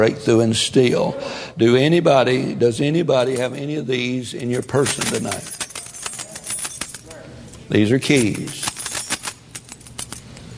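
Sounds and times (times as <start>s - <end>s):
speech: 0.0s - 5.6s, 7.7s - 8.6s
bunch of keys jingling: 3.2s - 3.6s, 4.3s - 10.5s.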